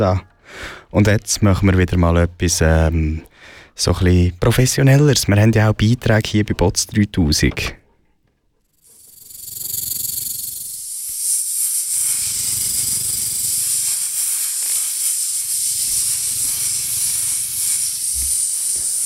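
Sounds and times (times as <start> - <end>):
speech: 0.0 - 7.8
snake hissing: 8.7 - 19.0.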